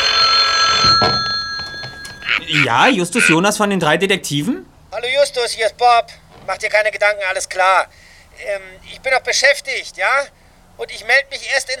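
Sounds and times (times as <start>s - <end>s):
telephone ringing in a headquarters office: 0.0s - 3.4s
speech: 1.0s - 1.3s, 2.5s - 11.7s.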